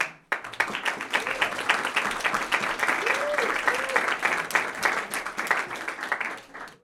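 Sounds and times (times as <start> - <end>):
small audience clapping: 0.0 - 6.8
person cheering yuhuu: 1.1 - 1.8, 2.9 - 4.3.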